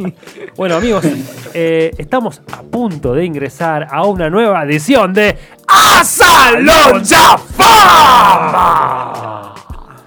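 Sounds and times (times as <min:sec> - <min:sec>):
speech: 0:00.0 - 0:09.5
person yelling: 0:05.7 - 0:09.6.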